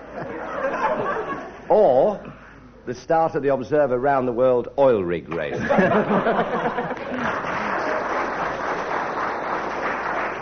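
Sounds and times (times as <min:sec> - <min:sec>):
laughter: 0:00.0 - 0:01.7, 0:05.5 - 0:08.8
speech: 0:01.7 - 0:02.3, 0:02.9 - 0:07.0
audience applause: 0:06.7 - 0:10.3.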